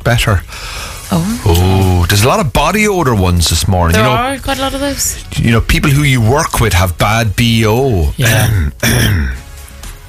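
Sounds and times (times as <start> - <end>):
speech: 0.1 - 9.4
quiet breathing: 0.4 - 1.5
harsh throat-clearing coughs: 8.2 - 9.5.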